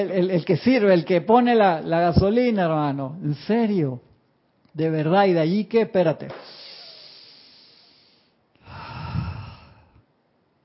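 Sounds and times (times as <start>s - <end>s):
speech: 0.0s - 4.1s, 4.8s - 6.6s
slow deep inhale and exhale: 6.5s - 10.1s.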